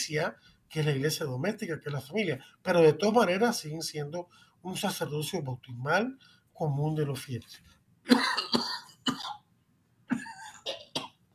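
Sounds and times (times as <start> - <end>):
speech: 0.0 - 8.6
person clearing throat while giving a talk: 8.1 - 9.4, 10.1 - 11.3.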